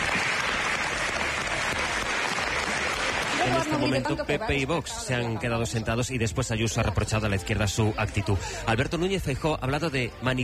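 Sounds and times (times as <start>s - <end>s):
applause from a large group in a parliament chamber: 0.0s - 4.1s
speech: 3.7s - 10.4s.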